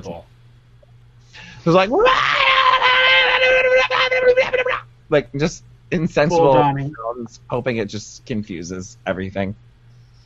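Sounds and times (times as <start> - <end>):
speech: 0.0 - 0.3, 1.4 - 2.4, 4.1 - 9.7
person screaming loudly: 1.9 - 4.8
laughter: 2.8 - 8.0.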